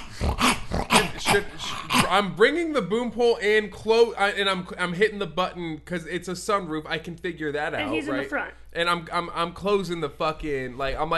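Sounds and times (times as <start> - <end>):
voice imitating a snarling growling dog: 0.0 - 2.4
speech: 1.3 - 11.1.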